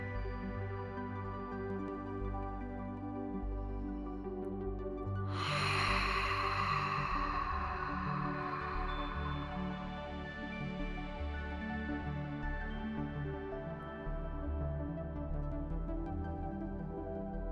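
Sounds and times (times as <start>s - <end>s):
sustained calm musical drone: 0.0s - 17.5s
big bold long breathy exhale: 5.3s - 10.2s.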